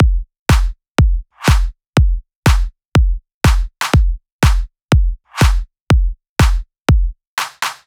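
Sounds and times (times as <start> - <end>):
stripped deep house drum kit at 122 bpm: 0.0 - 7.1.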